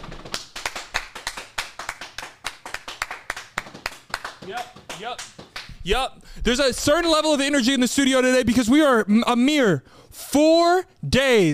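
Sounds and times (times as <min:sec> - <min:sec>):
applause in a studio: 0:00.0 - 0:05.7
speech: 0:04.5 - 0:11.5.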